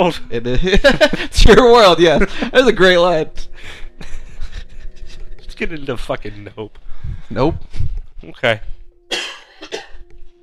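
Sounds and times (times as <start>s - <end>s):
speech: 0.0s - 4.1s, 5.6s - 8.8s
person coughing: 9.1s - 10.0s.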